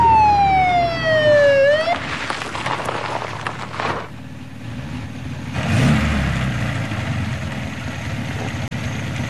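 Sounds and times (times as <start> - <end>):
Mercedes 220 police car siren wailing: 0.0 - 2.1
Mercedes 220 police car engine rumbling: 0.0 - 9.2
broad traffic noise: 0.0 - 9.2.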